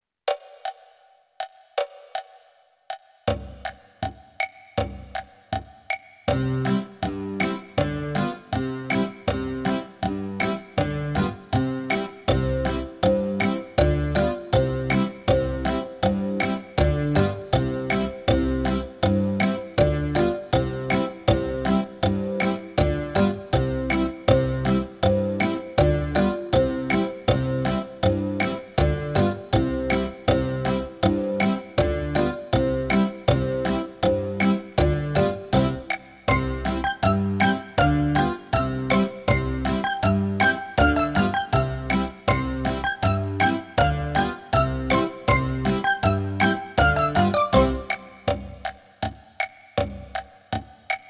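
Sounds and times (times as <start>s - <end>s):
backing track music: 3.3s - 51.0s.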